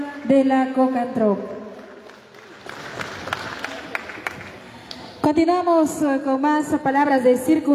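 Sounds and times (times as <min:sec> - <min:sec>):
speech: 0:00.3 - 0:01.6, 0:05.3 - 0:07.7
audience applause at a peasant women's federation anniversary ceremony: 0:01.8 - 0:04.8.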